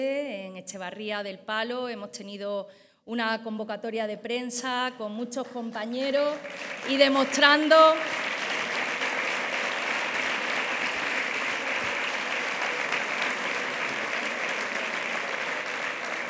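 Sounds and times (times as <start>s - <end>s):
speech: 0.0s - 8.3s
crowd applause at a political party press event: 6.3s - 16.2s.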